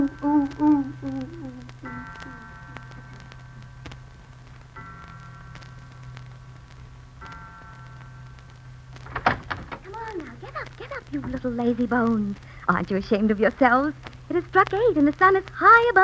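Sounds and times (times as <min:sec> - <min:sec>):
speech: 0:00.0 - 0:02.4, 0:11.0 - 0:16.0
door opening: 0:09.0 - 0:10.4.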